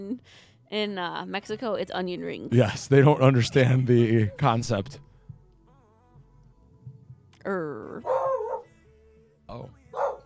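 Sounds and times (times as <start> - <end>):
speech: 0.0 - 5.1, 7.4 - 8.5, 9.5 - 10.1
dog barking out the back door: 8.0 - 8.7, 9.9 - 10.2.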